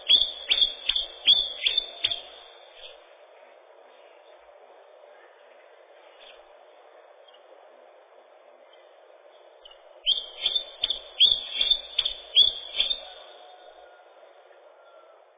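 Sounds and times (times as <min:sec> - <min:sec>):
common chiffchaff Phylloscopus collybita singing: 0:00.0 - 0:03.3, 0:05.8 - 0:14.3.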